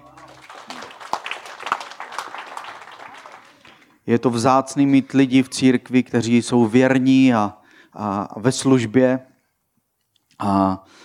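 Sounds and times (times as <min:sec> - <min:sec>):
audience applauding: 0:00.0 - 0:04.0
speech: 0:04.0 - 0:09.3, 0:10.4 - 0:11.0.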